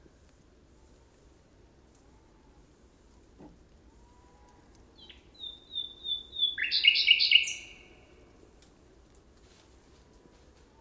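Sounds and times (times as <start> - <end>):
common nightingale singing: 4.4 - 8.2.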